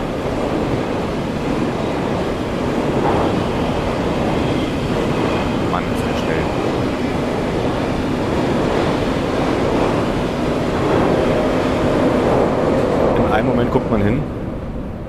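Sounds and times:
ICE high-speed train passing by: 0.0s - 15.0s.

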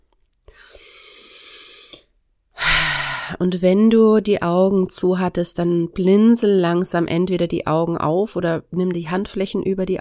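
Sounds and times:
deep breathing during a guided meditation: 0.5s - 3.4s
speech: 3.3s - 10.0s.

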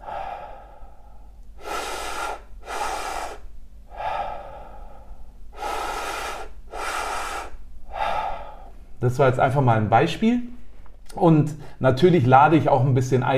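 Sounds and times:
deep breathwork breathing lying down, inhaling into belly and chest: 0.0s - 9.0s
speech: 9.0s - 10.5s, 11.1s - 13.3s.

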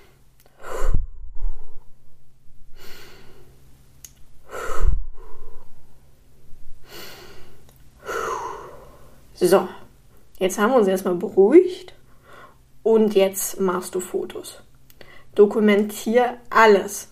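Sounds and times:
deep breathing in and out to calm down: 0.0s - 3.7s, 4.4s - 10.0s, 12.1s - 12.7s, 15.0s - 15.4s
speech: 9.4s - 9.8s, 10.4s - 12.0s, 12.9s - 14.7s, 15.4s - 17.0s.

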